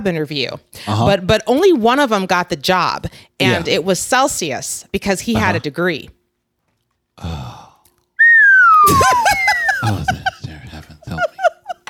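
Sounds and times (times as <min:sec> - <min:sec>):
speech: 0:00.0 - 0:06.2, 0:07.2 - 0:07.6
slide whistle played live: 0:08.2 - 0:09.8
people laughing: 0:08.9 - 0:11.8.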